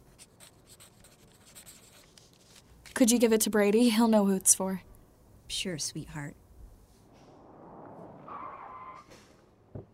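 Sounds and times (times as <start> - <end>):
pen writing down a phone number: 0.1 - 2.6
speech: 3.0 - 4.9, 5.6 - 6.4.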